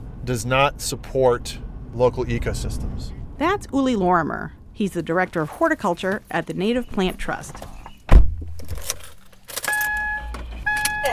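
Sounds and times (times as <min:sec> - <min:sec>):
low rumble of a car driving around the suburbs: 0:00.0 - 0:05.2
speech: 0:00.2 - 0:07.8
heavy thump: 0:08.1 - 0:08.8
keys jangling: 0:08.5 - 0:11.1.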